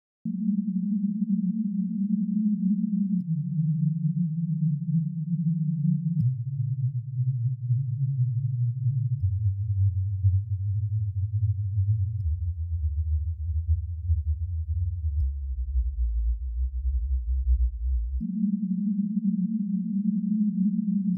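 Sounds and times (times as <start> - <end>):
subwoofer phase test tone: 0.3 - 21.1.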